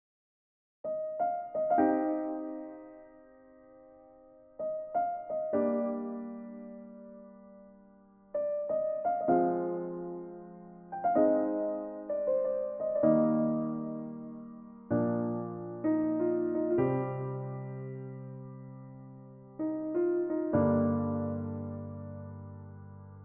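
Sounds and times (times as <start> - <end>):
acoustic unplugged piano karaoke instrumental: 0.9 - 23.2.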